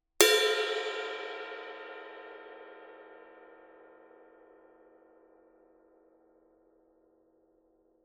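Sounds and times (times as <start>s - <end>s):
21-inch dry ride cymbal bell: 0.2s - 5.4s.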